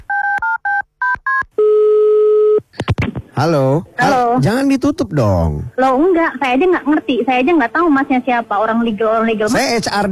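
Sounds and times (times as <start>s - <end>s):
long steady telephone tone: 0.0s - 2.7s
telephone keypad beeps while dialing: 0.1s - 1.4s
speech: 3.4s - 10.1s.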